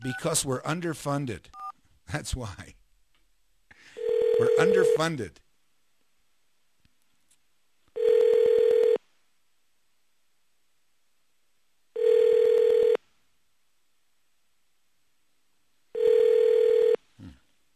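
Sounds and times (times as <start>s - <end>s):
speech: 0.0s - 2.8s, 4.5s - 5.4s
buzzy telephone line beeps: 4.0s - 5.0s, 8.0s - 9.0s, 12.0s - 13.0s, 16.0s - 17.0s.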